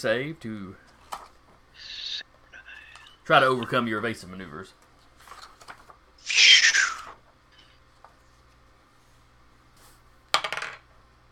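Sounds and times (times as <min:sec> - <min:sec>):
speech: 0:00.0 - 0:00.9, 0:03.3 - 0:04.8
dice rolling on a table: 0:10.4 - 0:10.9.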